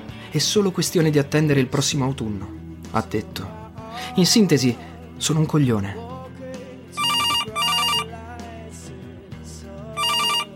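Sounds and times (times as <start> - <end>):
speech: 0.3 - 6.1
telephone ringing in loud electronic trills: 7.0 - 8.1, 10.0 - 10.5.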